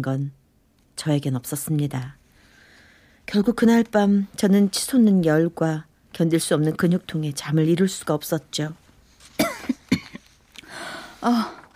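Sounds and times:
speech: 0.0s - 0.4s, 1.0s - 2.2s, 3.3s - 8.8s, 11.2s - 11.6s
person coughing harshly in a coughing fit: 9.4s - 10.2s
raspy breath: 10.6s - 11.7s.

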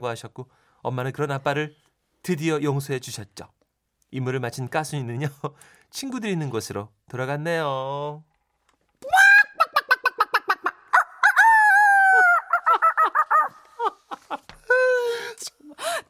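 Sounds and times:
speech: 0.0s - 8.3s
person imitating a chicken crowing: 9.0s - 13.7s
laughter: 9.3s - 15.1s.

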